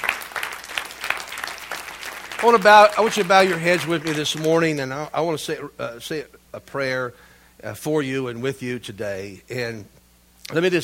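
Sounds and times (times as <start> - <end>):
audience clapping: 0.0 - 5.0
speech: 2.4 - 10.8.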